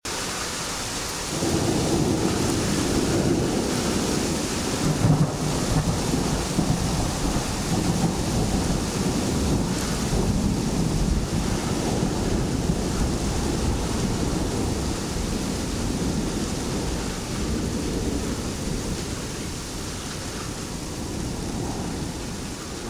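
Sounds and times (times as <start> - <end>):
rain: 0.0 - 22.8
thunder: 1.3 - 22.8.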